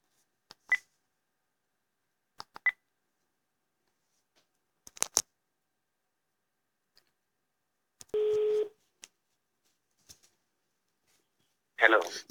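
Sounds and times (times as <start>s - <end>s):
phone redialing clicks and beeps after a dropped call: 2.4s - 2.8s, 8.2s - 8.7s
phone sustained tone: 8.2s - 8.7s
speech: 11.9s - 12.2s.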